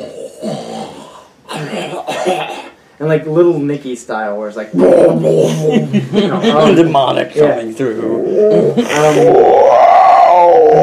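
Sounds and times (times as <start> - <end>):
voice imitating snoring: 0.0 - 1.3, 8.2 - 10.8
speech: 1.9 - 9.6
laughter: 5.4 - 6.9.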